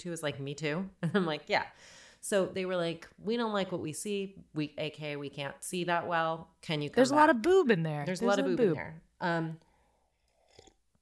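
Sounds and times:
speech: 0.0 - 9.7
person sipping hot tea: 9.7 - 10.9.

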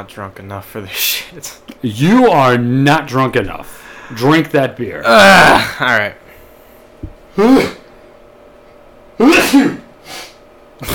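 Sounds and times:
speech: 0.0 - 6.2, 7.4 - 7.8, 9.5 - 9.8
person sneezing: 7.4 - 7.8, 9.2 - 10.9.

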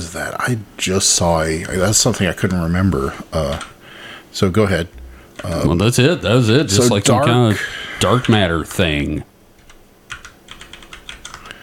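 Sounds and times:
speech: 0.1 - 3.8, 4.4 - 9.3
typing on a computer keyboard: 9.6 - 11.6.

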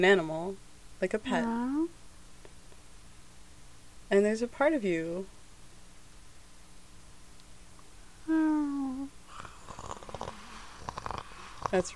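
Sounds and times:
speech: 0.0 - 2.0, 4.1 - 5.4, 11.7 - 11.9
person imitating a cat purring: 8.2 - 11.9.

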